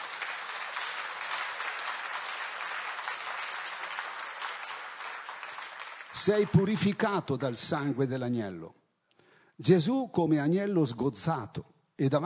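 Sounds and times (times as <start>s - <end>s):
crowd clapping: 0.0s - 7.3s
speech: 6.2s - 8.8s, 9.6s - 12.2s.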